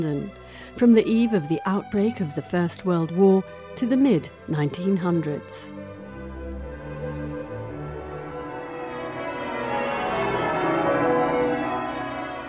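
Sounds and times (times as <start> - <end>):
speech: 0.0 - 6.0
church bells ringing in an overlapping peal: 5.9 - 12.4.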